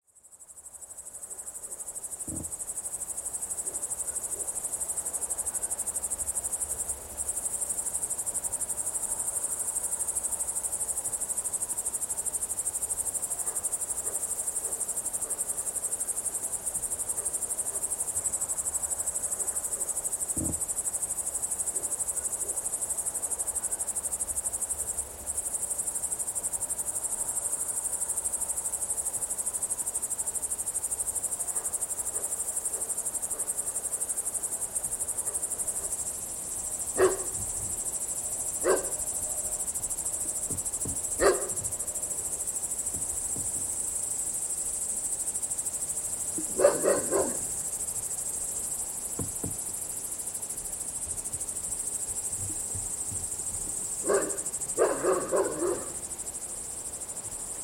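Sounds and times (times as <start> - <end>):
cricket chirping: 0.1 - 57.6
dog: 13.4 - 15.5, 31.5 - 33.6, 35.2 - 35.9, 37.0 - 37.5, 38.6 - 39.0, 41.1 - 41.7, 46.4 - 47.6, 54.0 - 56.0.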